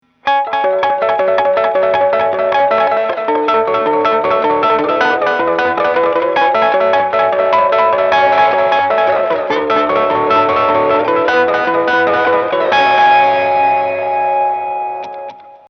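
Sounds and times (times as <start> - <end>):
fifths with effects: 0.0 - 15.6.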